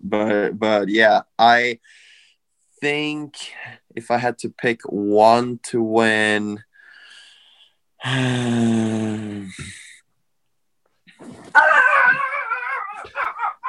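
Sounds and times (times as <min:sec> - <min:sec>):
speech: 0:00.1 - 0:02.0, 0:02.8 - 0:06.7, 0:08.0 - 0:09.8
pet dog howling: 0:11.5 - 0:13.6.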